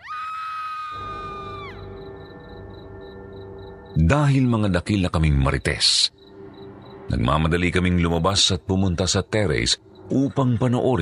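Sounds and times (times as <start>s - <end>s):
long high-pitched human scream from downstairs: 0.0s - 1.8s
speech: 4.0s - 6.2s, 7.1s - 11.0s.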